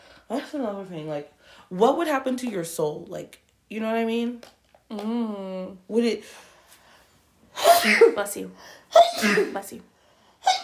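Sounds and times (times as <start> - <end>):
speech: 0.3 - 6.5, 7.8 - 9.9
person sneezing: 7.6 - 8.2, 8.9 - 9.7, 10.4 - 10.6.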